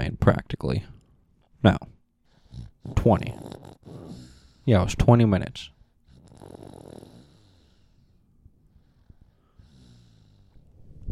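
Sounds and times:
speech: 0:00.0 - 0:01.0, 0:01.6 - 0:01.9, 0:02.9 - 0:03.5, 0:04.7 - 0:05.7
person breathing: 0:02.2 - 0:04.7, 0:05.7 - 0:10.7
person snoring: 0:02.4 - 0:04.8, 0:06.1 - 0:08.2, 0:09.2 - 0:10.6.

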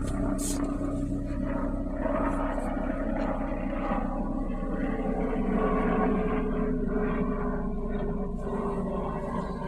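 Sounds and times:
helicopter flying overhead: 0:00.0 - 0:09.6.

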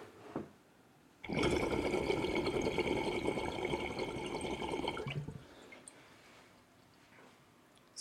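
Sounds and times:
water bubbling and gurgling through a glass pipe during a dab: 0:01.2 - 0:05.5
speech: 0:01.3 - 0:01.6.

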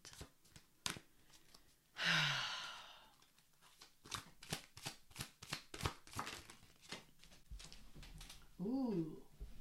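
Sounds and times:
tarot cards being shuffled and a card drawn: 0:00.0 - 0:01.8, 0:03.2 - 0:08.4
quiet breathy sigh: 0:01.9 - 0:03.2.

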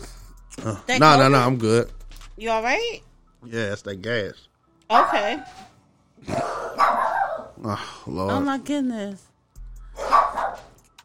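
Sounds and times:
speech: 0:00.6 - 0:07.0, 0:07.6 - 0:09.3
dog barking: 0:04.9 - 0:05.7, 0:06.3 - 0:07.6, 0:10.0 - 0:10.8.

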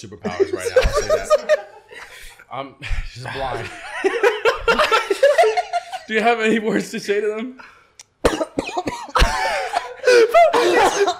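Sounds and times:
speech: 0:00.0 - 0:01.6, 0:02.5 - 0:04.9, 0:06.1 - 0:07.8
laughter: 0:00.2 - 0:02.2, 0:02.8 - 0:06.7, 0:09.1 - 0:11.1
person coughing: 0:08.2 - 0:11.1.

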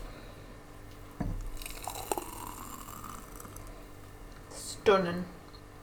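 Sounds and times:
cocktail being poured into a glass: 0:01.2 - 0:03.8
speech: 0:04.8 - 0:05.4.

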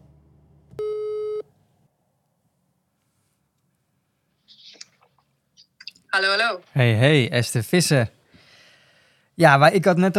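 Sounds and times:
telephone tone while calling someone: 0:00.8 - 0:01.4
speech: 0:06.1 - 0:08.2, 0:09.4 - 0:10.1.

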